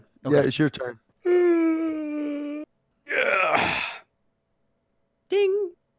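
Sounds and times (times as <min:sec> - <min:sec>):
speech: 0:00.2 - 0:01.0
person letting out an exaggerated yawn: 0:01.2 - 0:04.1.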